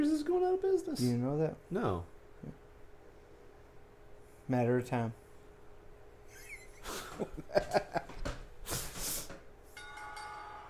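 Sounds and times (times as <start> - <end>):
speech: 0.0 - 2.6, 4.5 - 5.2, 6.8 - 8.1
laughter: 6.4 - 8.2
sustained ringing tone: 9.7 - 10.6
quick bright bell dings: 9.8 - 10.6.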